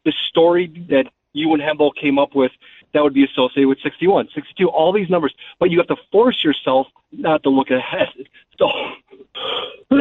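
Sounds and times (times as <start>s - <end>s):
speech: 0.0s - 9.9s
person sneezing: 8.6s - 9.9s.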